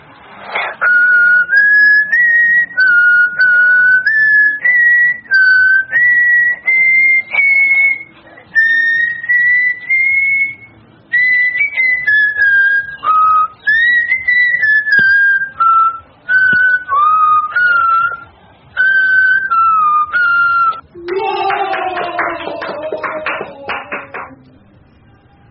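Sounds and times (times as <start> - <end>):
child whistling a melody at a talent show: 0.8 - 20.9
laughter: 20.9 - 24.4.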